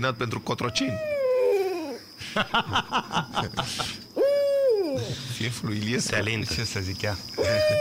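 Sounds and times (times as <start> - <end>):
speech: 0.0 - 1.2, 2.2 - 4.0, 5.0 - 7.8
owl hooting: 0.6 - 2.1, 4.1 - 5.3, 7.4 - 7.8
laughter: 2.2 - 4.0.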